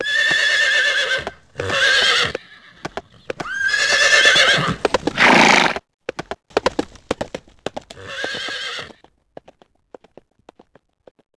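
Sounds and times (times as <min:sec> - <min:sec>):
horse whinnying: 0:00.0 - 0:05.8, 0:08.0 - 0:09.0
horse snorting: 0:04.4 - 0:05.8.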